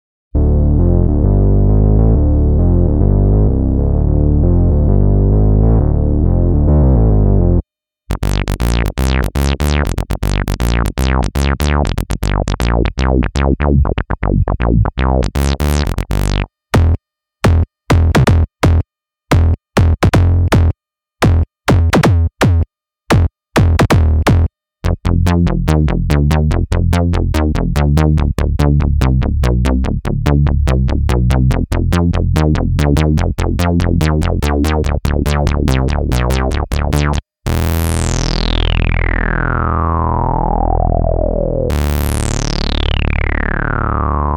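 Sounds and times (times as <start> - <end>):
synth bass: 0.3 - 44.3.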